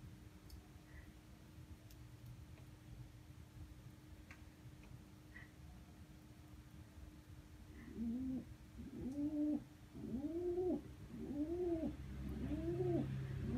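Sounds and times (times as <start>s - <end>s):
faint hum: 0.0s - 13.5s
dove cooing in low hooked notes: 7.8s - 13.5s.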